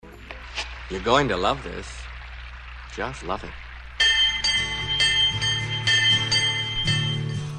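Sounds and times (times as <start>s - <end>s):
speech: 0.9s - 2.0s, 3.0s - 3.6s
low sustained hum: 3.6s - 7.5s
bell ringing: 4.0s - 7.5s.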